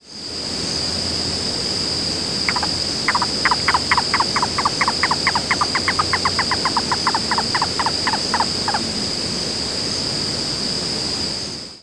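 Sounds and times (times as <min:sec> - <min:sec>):
constant high insect drone: 0:00.0 - 0:11.8
yellow-billed cuckoo hollow knocking calls: 0:02.5 - 0:08.8.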